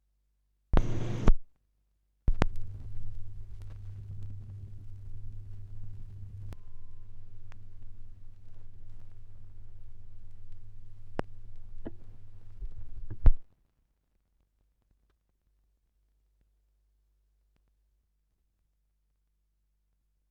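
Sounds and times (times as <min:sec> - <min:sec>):
gramophone record noise at 16 rpm: 0:00.8 - 0:01.4, 0:02.3 - 0:13.4.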